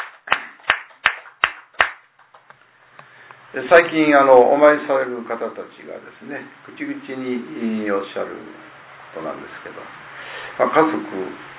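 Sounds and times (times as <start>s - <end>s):
people clapping at a child's ninth birthday gathering: 0.0s - 2.6s
speech: 3.5s - 11.5s.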